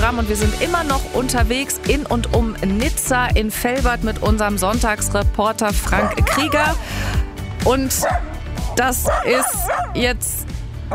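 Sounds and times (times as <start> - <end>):
speech: 0.1 - 10.5
dog in a bicycle trailer yipping and whimpering: 5.9 - 6.7, 8.0 - 10.0.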